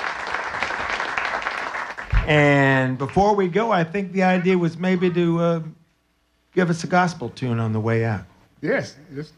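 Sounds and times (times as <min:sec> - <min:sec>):
audience applause: 0:00.0 - 0:03.3
speech: 0:02.3 - 0:05.8, 0:06.6 - 0:09.3.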